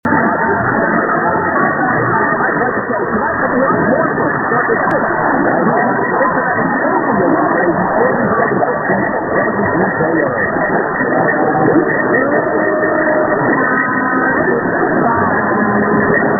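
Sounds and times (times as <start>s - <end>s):
oldies radio broadcast from Florence KY on medium wave: 0.1s - 16.3s.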